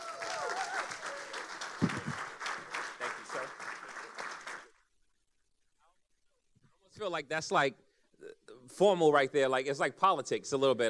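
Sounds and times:
faint cheer or whoop: 0.0 - 1.4
audience applauding: 0.0 - 4.8
speech: 7.1 - 7.8, 8.7 - 10.8.

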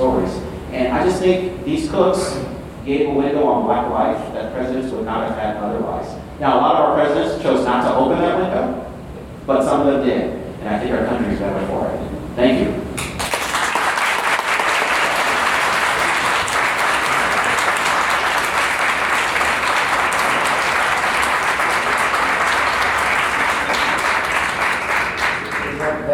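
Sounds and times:
speech: 0.0 - 8.8, 9.5 - 12.8
large audience applause in a standing ovation: 13.0 - 26.0.

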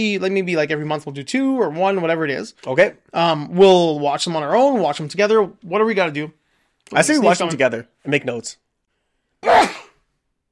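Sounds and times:
speech: 0.0 - 8.6
person sneezing: 9.4 - 10.1.

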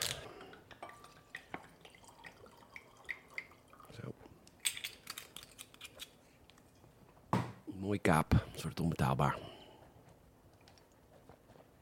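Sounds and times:
wine pouring into a glass: 0.1 - 4.1
speech: 7.8 - 9.5.

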